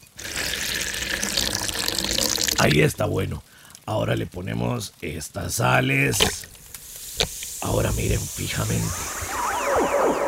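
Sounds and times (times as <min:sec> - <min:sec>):
water poured from a bottle into a dried gourd bowl: 0:00.0 - 0:02.8
speech: 0:02.6 - 0:06.6, 0:07.2 - 0:09.2.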